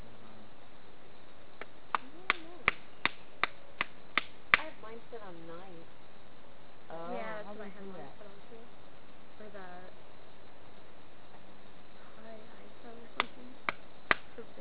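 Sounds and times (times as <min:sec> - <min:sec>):
weird tapping: 0:01.6 - 0:04.8, 0:13.2 - 0:14.4.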